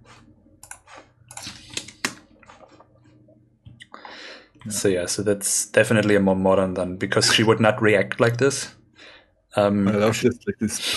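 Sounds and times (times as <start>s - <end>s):
low steady hum: 0.0s - 10.9s
computer mouse right-clicks in a web browser: 0.6s - 2.7s
speech: 4.6s - 8.8s, 9.6s - 10.9s.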